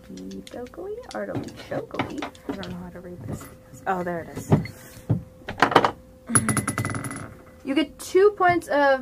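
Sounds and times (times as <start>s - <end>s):
speech: 0.1s - 5.1s, 7.6s - 9.0s
dice rolled for a game tumbling across a hard tabletop: 5.6s - 7.5s.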